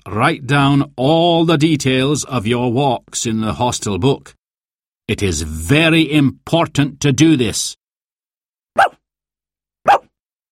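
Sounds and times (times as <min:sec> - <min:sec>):
speech: 0:00.0 - 0:04.4, 0:05.1 - 0:07.8, 0:08.8 - 0:09.0, 0:09.8 - 0:10.1
dog barking: 0:08.8 - 0:09.0, 0:09.8 - 0:10.2.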